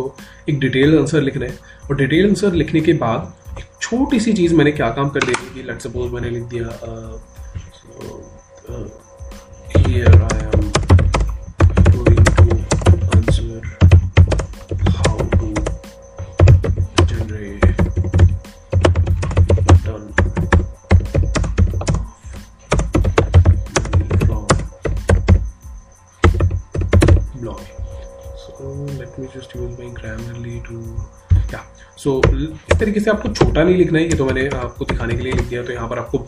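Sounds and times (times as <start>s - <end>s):
speech: 0.0s - 9.0s, 29.5s - 36.2s
typing an answer on a computer keyboard: 5.1s - 5.6s, 9.7s - 15.8s, 16.4s - 25.4s, 26.2s - 27.7s, 30.0s - 36.0s.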